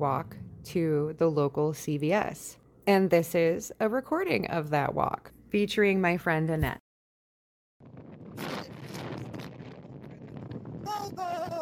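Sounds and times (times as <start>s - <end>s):
wind gusts buffeting the microphone outdoors during a walk with a dog: 0.0s - 1.7s, 7.8s - 11.6s
speech: 0.0s - 6.8s.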